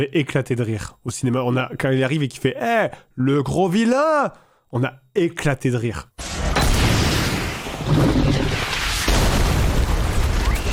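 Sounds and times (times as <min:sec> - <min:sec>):
speech: 0:00.0 - 0:06.5
debris-like crackle: 0:06.2 - 0:10.7
rocket-launcher explosion inside a closed train car: 0:06.2 - 0:10.7
sharp blast: 0:06.2 - 0:10.7.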